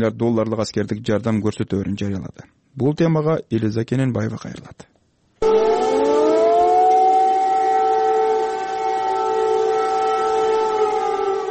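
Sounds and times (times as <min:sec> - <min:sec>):
speech: 0:00.0 - 0:05.8
air raid sirens warning of a missile threat in Kyiv: 0:05.4 - 0:11.4.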